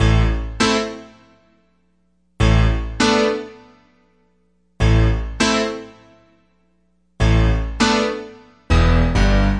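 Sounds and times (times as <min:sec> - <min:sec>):
electric piano playing simple hard chords: 0:00.0 - 0:01.3, 0:02.4 - 0:03.9, 0:04.8 - 0:06.3, 0:07.2 - 0:09.5.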